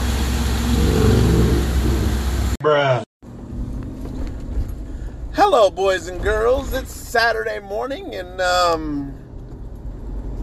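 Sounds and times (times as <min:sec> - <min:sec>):
car engine humming and revving: 0:00.0 - 0:02.6
speech: 0:05.5 - 0:09.2.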